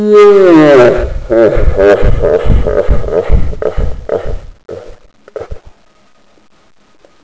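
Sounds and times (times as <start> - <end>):
person laughing evilly: 0.8 - 3.9.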